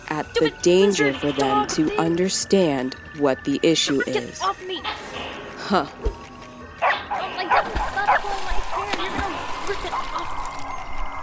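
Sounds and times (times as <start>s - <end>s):
speech: 0.2s - 6.1s
dogs barking and yipping: 6.8s - 10.8s.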